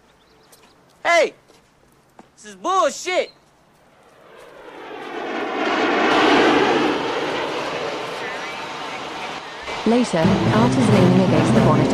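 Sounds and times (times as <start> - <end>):
speech: 1.1 - 1.4, 2.4 - 3.4, 9.9 - 11.9
private jet engine roaring and whining while taxiing along a runway: 3.7 - 11.9.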